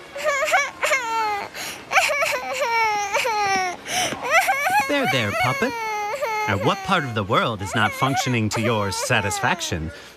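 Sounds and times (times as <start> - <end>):
young child crying in wailing bursts: 0.2 - 10.0
speech: 5.0 - 10.1.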